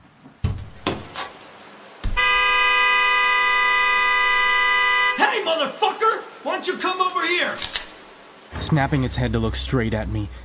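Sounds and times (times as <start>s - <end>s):
dull thumps: 0.4s - 1.3s, 2.0s - 2.3s
car horn blaring continuously: 2.1s - 5.3s
speech: 5.5s - 7.8s, 8.5s - 10.4s.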